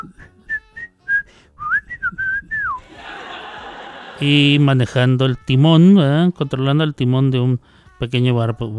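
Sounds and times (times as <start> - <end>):
cartoon character whistling a bouncy melody: 0.0 - 2.8
laughter: 2.8 - 4.8
speech: 4.2 - 8.7.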